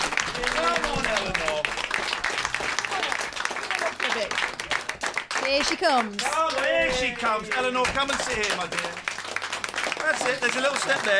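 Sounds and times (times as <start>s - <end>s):
audience applause for a guest co-host: 0.0s - 11.1s
speech: 5.6s - 9.0s, 10.0s - 11.1s.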